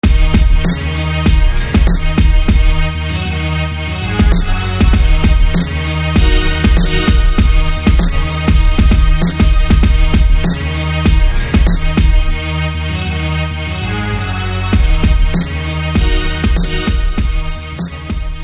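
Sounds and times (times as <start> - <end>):
strings: 0.0 - 18.4.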